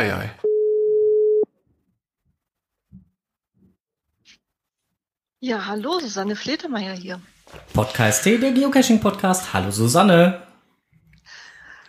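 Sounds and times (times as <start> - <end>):
speech: 0.0 - 0.4, 5.4 - 10.4
telephone tone during an outgoing call: 0.4 - 1.5.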